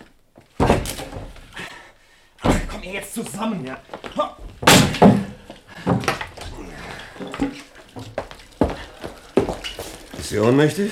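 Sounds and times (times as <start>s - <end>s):
door being kicked in: 0.6s - 1.4s, 4.4s - 6.6s
speech: 2.9s - 4.4s, 10.3s - 10.9s.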